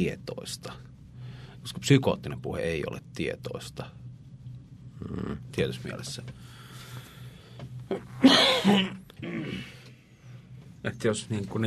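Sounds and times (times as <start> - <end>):
speech: 0.0 - 0.9, 1.6 - 4.0, 5.0 - 7.0, 7.9 - 9.7, 10.8 - 11.6
throat clearing: 7.9 - 9.7.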